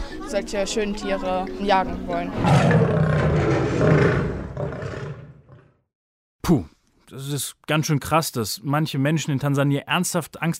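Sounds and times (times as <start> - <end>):
speech: 0.3 - 4.1, 6.5 - 10.5
lion roaring: 2.4 - 5.8.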